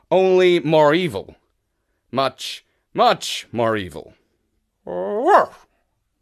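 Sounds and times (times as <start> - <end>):
speech: 0.1 - 1.4, 2.1 - 4.2, 4.8 - 5.6
person imitating a dog's bark: 4.8 - 5.7.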